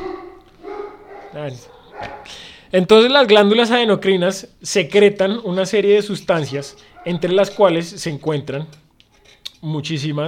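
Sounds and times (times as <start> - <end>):
sharp dog barks: 0.0 - 2.4, 6.4 - 7.8
speech: 1.3 - 8.8, 9.5 - 10.2.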